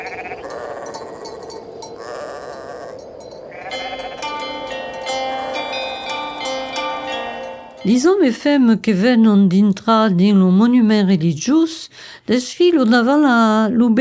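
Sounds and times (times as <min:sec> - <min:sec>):
sheep bleating: 0:00.0 - 0:04.7
clinking sounds: 0:00.0 - 0:07.9
sheep flock noise: 0:03.2 - 0:08.1
speech: 0:07.8 - 0:13.9.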